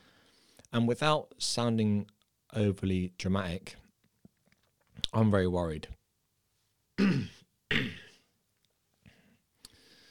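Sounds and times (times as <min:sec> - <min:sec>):
speech: 0:00.7 - 0:03.8, 0:05.0 - 0:06.0, 0:07.0 - 0:07.4
person coughing: 0:07.0 - 0:08.2.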